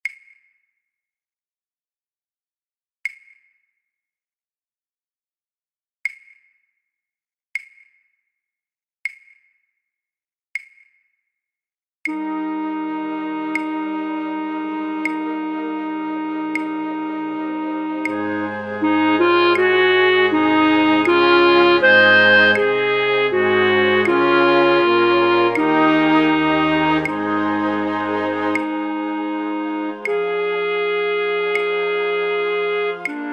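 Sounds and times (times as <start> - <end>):
flute orchestra playing: 12.1 - 33.3.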